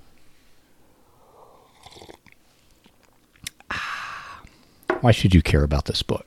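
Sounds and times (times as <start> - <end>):
loud slurping of coffee: 1.6 - 3.6
soft lip smacks while sipping coffee: 2.2 - 3.7
speech: 5.0 - 6.2.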